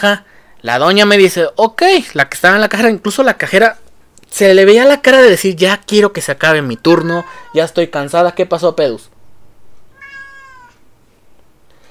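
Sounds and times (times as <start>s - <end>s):
speech: 0.0s - 9.1s
cat meowing: 6.6s - 7.7s, 9.9s - 10.9s.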